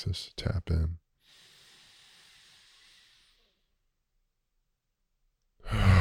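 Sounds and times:
speech: 0.0s - 1.0s
deep breath exhaled during a guided breathing exercise: 1.2s - 3.7s, 5.6s - 5.9s.

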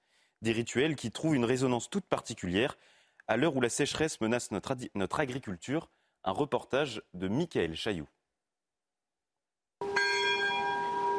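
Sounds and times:
speech: 0.4s - 8.2s
church bells ringing for a procession: 9.8s - 11.1s.

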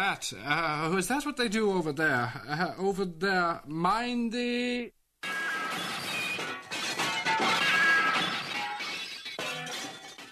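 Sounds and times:
speech: 0.0s - 5.4s
crash into a glass partition: 5.2s - 10.2s.

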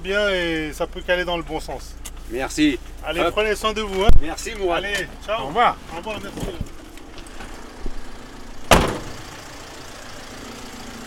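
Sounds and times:
speech: 0.0s - 6.7s
small truck engine rumbling low and steady: 0.0s - 11.0s
truck door slam: 8.7s - 9.2s.

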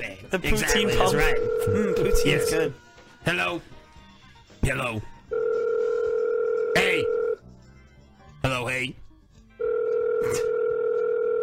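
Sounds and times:
speech: 0.0s - 3.7s, 4.6s - 5.1s, 6.8s - 7.2s, 8.4s - 9.0s
steady continuous telephone dial tone: 0.9s - 2.5s, 5.3s - 7.4s, 9.6s - 11.4s.

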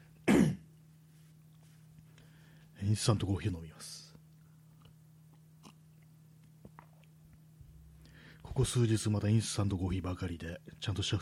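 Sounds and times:
faint steady hum: 0.0s - 11.1s
raspy throat clearing: 0.2s - 0.7s
speech: 2.8s - 4.0s, 8.6s - 11.1s.

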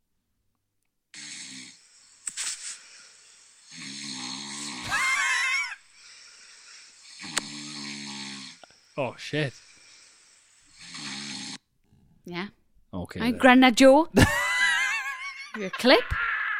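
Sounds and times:
sleeping person snoring loudly: 1.2s - 12.2s
speech: 9.0s - 9.6s, 12.3s - 14.4s, 15.6s - 16.2s
laughter: 14.2s - 16.5s.

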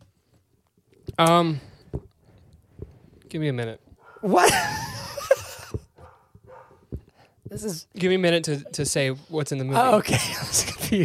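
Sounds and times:
speech: 1.2s - 1.7s, 3.3s - 4.8s, 7.6s - 11.0s
dogs barking: 4.0s - 4.6s, 6.0s - 7.0s
dog high yip: 6.0s - 6.8s.

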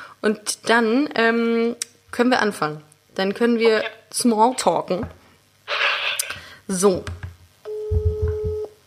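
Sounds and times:
speech: 0.2s - 5.2s, 6.7s - 7.2s
phone ringback tone while a call connects: 7.7s - 8.8s.

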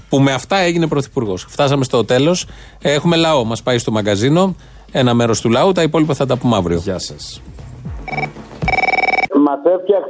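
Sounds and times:
speech: 0.1s - 8.3s, 9.5s - 10.0s
telephone ringing with trilling bell: 8.0s - 9.3s.

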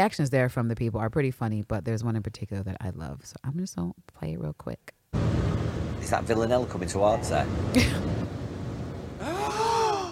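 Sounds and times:
speech: 0.0s - 5.4s, 6.0s - 8.3s
breathy rush of air: 7.5s - 10.0s
sharp voiced gasp: 9.2s - 10.0s.

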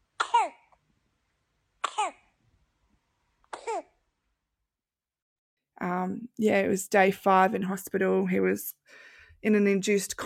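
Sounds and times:
baby coughing: 0.2s - 0.7s, 1.8s - 2.3s, 3.5s - 4.0s
speech: 5.8s - 10.2s.

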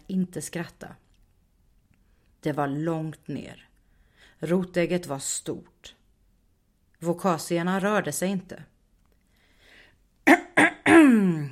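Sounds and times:
speech: 0.1s - 1.1s, 2.4s - 3.7s, 4.4s - 6.0s, 7.0s - 8.7s, 11.1s - 11.5s
person clearing throat: 10.3s - 11.5s.

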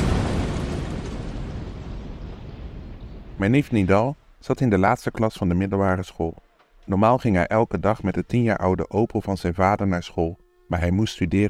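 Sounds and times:
heavy explosion with deep rumbling blast: 0.0s - 4.8s
speech: 3.4s - 11.4s.

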